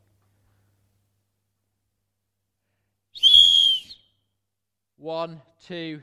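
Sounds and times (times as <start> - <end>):
shrill whistle blast: 3.2 - 4.3
speech: 5.0 - 6.0.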